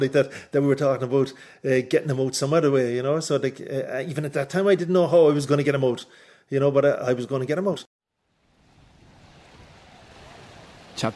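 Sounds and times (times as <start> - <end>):
speech: 0.0 - 7.9, 11.0 - 11.1
low rumble of wind at a harbor: 8.2 - 11.1
harbor waves washing against the shore: 8.3 - 11.1.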